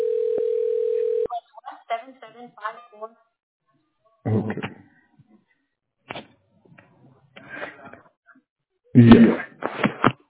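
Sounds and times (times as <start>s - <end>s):
web phone call tone: 0.0s - 1.3s
speech: 4.2s - 4.8s, 9.0s - 9.5s.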